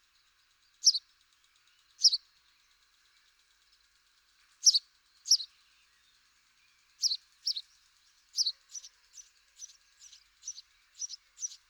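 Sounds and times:
house sparrow Passer domesticus chirping: 2.0 - 2.2, 4.6 - 5.5, 7.0 - 7.6, 8.4 - 11.6.

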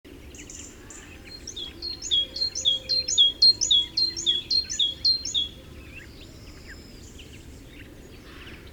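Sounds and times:
great tit Parus major singing: 1.0 - 5.6.

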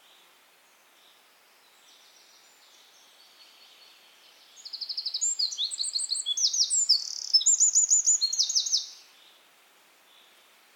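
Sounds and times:
Eurasian wren song: 1.1 - 9.1.

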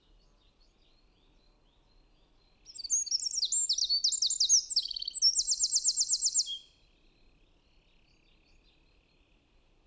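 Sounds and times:
Eurasian wren Troglodytes troglodytes singing: 2.7 - 6.6.

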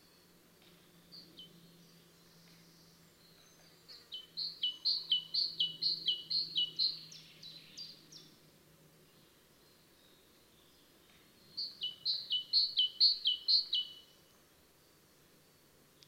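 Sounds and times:
great tit Parus major song: 0.6 - 8.3, 11.0 - 14.1.

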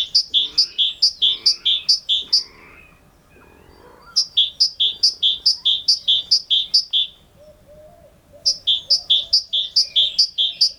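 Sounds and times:
great tit Parus major singing: 0.0 - 2.5, 4.1 - 7.1, 8.5 - 10.7.

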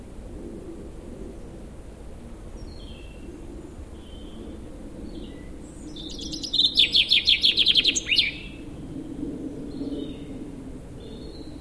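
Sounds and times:
common chaffinch Fringilla coelebs singing chipping notes with downward flourish: 6.0 - 8.5.

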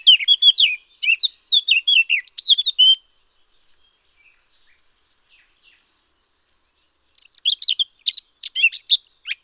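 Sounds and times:
Eurasian blackcap song: 0.0 - 9.4.

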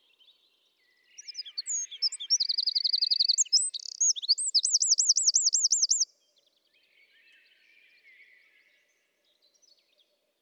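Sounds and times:
Eurasian wren Troglodytes troglodytes singing trills and twittering notes: 1.2 - 6.1.

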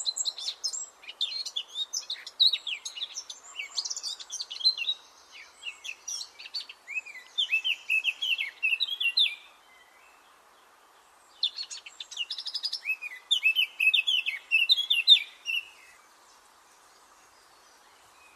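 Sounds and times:
Eurasian blackcap Sylvia atricapilla singing: 0.0 - 9.5, 11.4 - 16.0.

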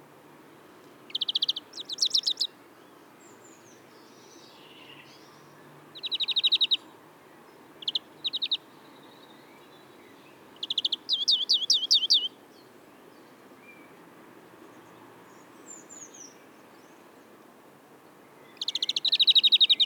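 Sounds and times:
European greenfinch Chloris chloris singing fast trilled notes: 1.1 - 2.5, 3.4 - 6.8, 7.8 - 12.4, 18.4 - 19.8.

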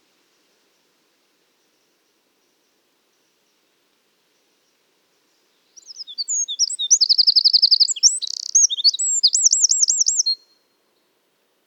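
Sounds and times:
Eurasian wren Troglodytes troglodytes singing energetic high song: 5.8 - 10.4.

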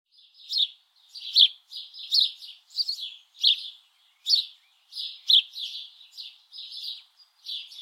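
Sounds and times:
House Sparrow Passer domesticus buzzy cheep notes: 0.1 - 7.8.

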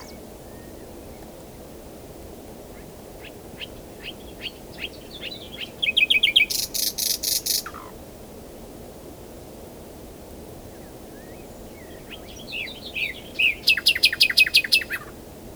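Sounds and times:
common nightingale Luscinia megarhynchos singing: 0.0 - 0.8, 3.2 - 7.8, 11.2 - 15.1.

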